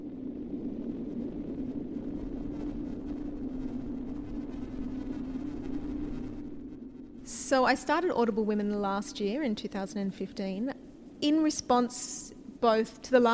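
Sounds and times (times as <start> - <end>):
dense wash of rumbling crackling noise: 0.0 - 13.3
loud steady droning hum in live experimental music: 0.0 - 13.3
speech: 7.5 - 13.3.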